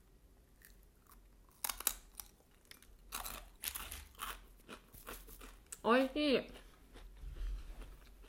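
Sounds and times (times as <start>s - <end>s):
bitten and chewed crispy homemade baked cheese crisps crunching: 0.6s - 5.8s
speech: 5.8s - 6.6s.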